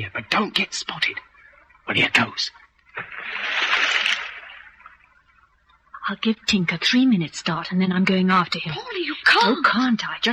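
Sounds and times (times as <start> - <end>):
speech: 0.0 - 1.3, 1.9 - 4.0, 6.1 - 10.3
person splashing into river water inside a culvert: 3.0 - 4.8.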